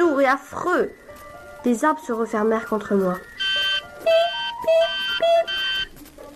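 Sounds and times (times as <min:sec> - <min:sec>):
speech: 0:00.3 - 0:03.3
alarm clock ringing with two-pitch electronic tones: 0:03.4 - 0:05.9.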